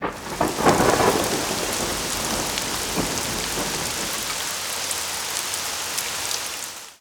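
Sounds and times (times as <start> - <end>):
thunder: 0.0 - 4.7
moderate to heavy rain: 0.0 - 6.9.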